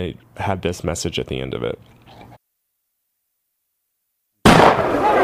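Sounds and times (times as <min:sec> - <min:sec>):
speech: 0:00.0 - 0:02.2
gunshot: 0:04.4 - 0:05.1.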